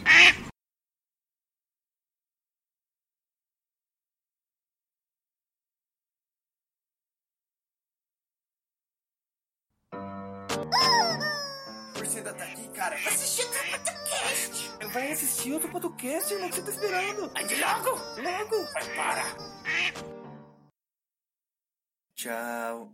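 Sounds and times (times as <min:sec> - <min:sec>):
duck quacking: 0:00.0 - 0:00.5, 0:12.0 - 0:15.0, 0:16.4 - 0:20.1
speech: 0:10.6 - 0:11.2, 0:12.0 - 0:20.1, 0:22.2 - 0:22.9.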